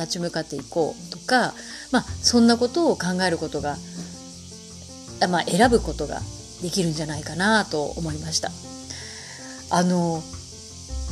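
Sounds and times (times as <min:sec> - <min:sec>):
speech: 0:00.0 - 0:04.0, 0:05.2 - 0:08.8, 0:09.7 - 0:10.4
faint high-pitched buzz of cicadas heard from a home: 0:00.0 - 0:11.1.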